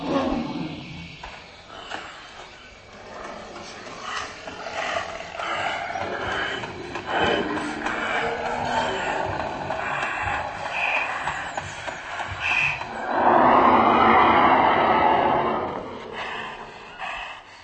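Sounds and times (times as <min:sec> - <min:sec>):
mammoth roar reconstructed by experts: 0:02.9 - 0:11.3, 0:12.7 - 0:17.4.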